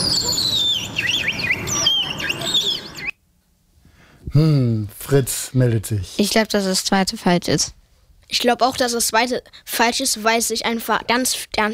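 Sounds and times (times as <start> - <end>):
willow warbler song: 0.0 - 3.2
speech: 4.4 - 11.7.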